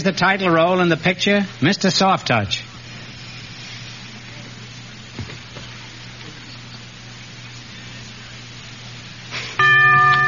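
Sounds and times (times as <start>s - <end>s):
speech: 0.0s - 2.6s
quiz show bell signalling a wrong answer: 9.6s - 10.2s.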